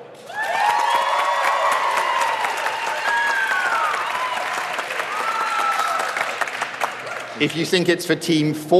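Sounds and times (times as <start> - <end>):
audience cheers and whoops: 0.2 - 6.3
applause from a sizable audience: 0.3 - 7.9
speech: 7.4 - 8.7.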